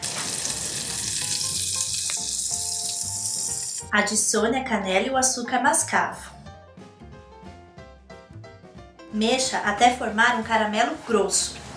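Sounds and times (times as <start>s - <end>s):
butter sizzling in a frying pan over medium heat: 0.0s - 3.8s
speech: 3.9s - 6.4s, 9.2s - 11.7s.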